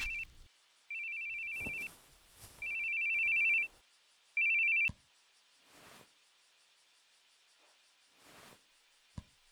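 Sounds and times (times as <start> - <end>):
soft rustles: 0.0 - 0.5, 1.4 - 3.7, 8.2 - 8.6
phone ringing with bright electronic trills: 0.0 - 2.0, 2.6 - 3.7, 4.4 - 4.9.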